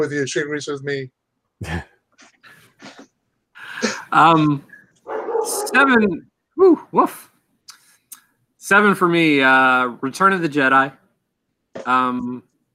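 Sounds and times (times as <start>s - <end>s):
speech: 0.0s - 1.9s, 4.1s - 4.7s, 5.4s - 7.3s, 8.7s - 11.0s, 11.8s - 12.5s
dog yips: 5.0s - 5.8s
household pet dogs barking excitedly: 5.0s - 5.9s.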